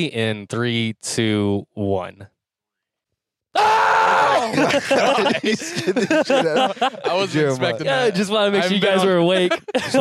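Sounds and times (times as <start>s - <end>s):
speech: 0.0s - 2.3s, 3.6s - 10.0s
person screaming loudly: 3.6s - 4.7s
laughter: 4.1s - 10.0s.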